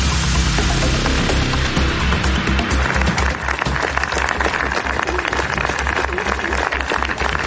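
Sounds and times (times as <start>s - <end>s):
low hum: 0.0s - 4.1s
large crowd of hundreds applauding at a cemetery: 0.7s - 7.4s.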